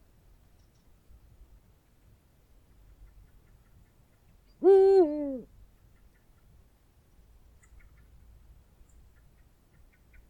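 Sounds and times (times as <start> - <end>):
Eurasian eagle-owl booming hoot: 4.6 - 5.4.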